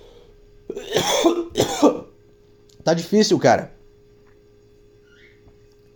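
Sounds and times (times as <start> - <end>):
dry hacking cough: 0.7 - 2.1
speech: 2.9 - 3.8.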